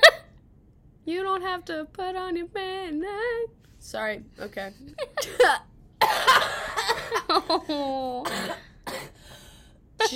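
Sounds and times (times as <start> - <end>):
speech: 1.0 - 6.5, 7.1 - 8.7
harsh phlegmy coughing with mucus coming up: 5.2 - 7.3, 8.2 - 9.2.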